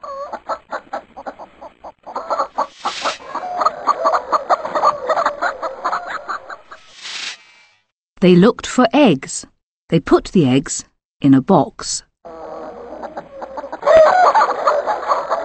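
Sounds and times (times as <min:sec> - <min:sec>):
hens clucking: 0:00.0 - 0:06.9, 0:12.3 - 0:15.4
rustling: 0:02.6 - 0:03.6
speech: 0:08.2 - 0:12.1.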